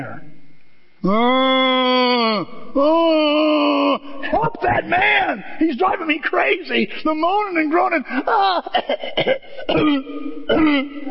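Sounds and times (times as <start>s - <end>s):
speech: 1.0s - 3.8s, 4.4s - 11.0s
laughter: 4.2s - 5.0s, 8.0s - 9.5s
voice imitating a rough croaky colicky cough: 8.6s - 11.0s.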